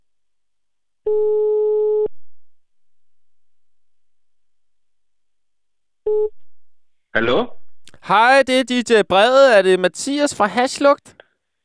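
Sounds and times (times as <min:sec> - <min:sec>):
speech: 0:01.1 - 0:01.4, 0:07.2 - 0:07.5, 0:08.1 - 0:11.2
telephone line tone as a call is placed: 0:01.1 - 0:02.1.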